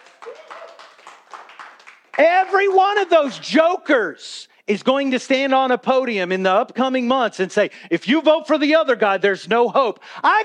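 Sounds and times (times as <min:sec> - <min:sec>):
people clapping hands: 0:00.0 - 0:03.5
speech: 0:02.2 - 0:10.4.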